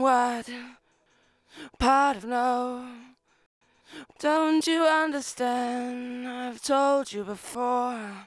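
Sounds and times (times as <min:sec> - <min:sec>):
person singing lead vocal verse: 0:00.0 - 0:00.7, 0:01.6 - 0:03.1, 0:03.9 - 0:08.2.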